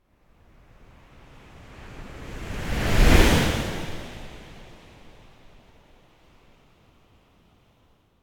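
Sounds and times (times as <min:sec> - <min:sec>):
strong fast deep wave whoosh passing left to right: 0:02.1 - 0:04.8.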